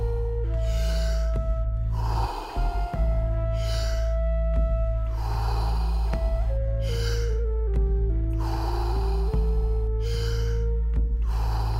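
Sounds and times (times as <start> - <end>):
continuous deep breathing without pauses: 0.0 - 11.7.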